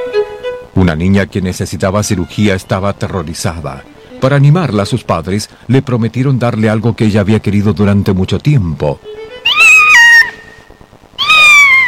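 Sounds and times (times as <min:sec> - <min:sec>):
speech: 0:00.8 - 0:09.3
kitten meowing: 0:09.4 - 0:10.5, 0:11.2 - 0:11.8.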